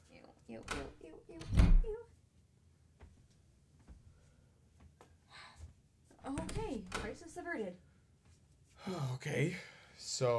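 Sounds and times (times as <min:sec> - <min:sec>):
speech: 0:00.5 - 0:01.6, 0:07.2 - 0:07.9, 0:08.9 - 0:10.3
door being pulled open: 0:00.6 - 0:02.0, 0:06.2 - 0:07.4.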